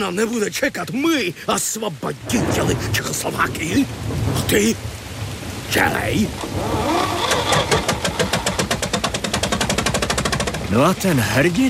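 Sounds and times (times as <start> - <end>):
speech: 0.0 - 5.0, 5.7 - 7.0, 10.7 - 11.6
tractor engine chugging into life: 7.2 - 10.7.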